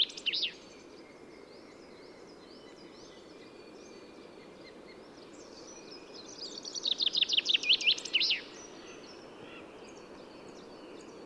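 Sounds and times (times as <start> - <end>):
common chaffinch (Fringilla coelebs) song: 0.0 - 1.0, 5.0 - 11.2.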